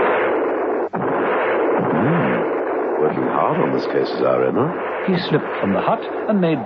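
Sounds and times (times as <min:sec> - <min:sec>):
rifle gunshots: 0:00.0 - 0:03.0
speech: 0:03.1 - 0:06.6.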